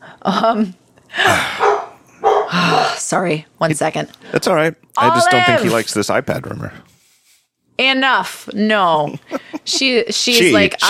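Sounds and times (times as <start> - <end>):
speech: 0.2 - 1.7, 2.5 - 6.9, 7.8 - 10.8
dog barking: 1.6 - 3.0.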